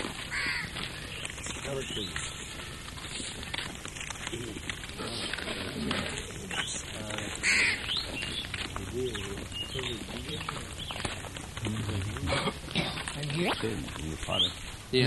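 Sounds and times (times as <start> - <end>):
large birds cawing at a bird sanctuary: 0.0 - 3.9, 5.0 - 11.3
dense noisy outdoor background: 0.0 - 15.0
faint voices talking: 0.0 - 15.0.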